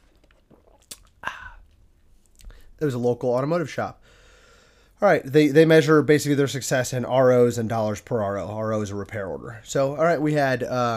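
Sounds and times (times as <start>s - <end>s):
swallowing gulp: 0.0s - 1.8s
faint mouth noises: 0.0s - 2.6s
person sipping a drink: 0.0s - 2.6s
speech: 2.8s - 4.2s, 5.0s - 10.9s.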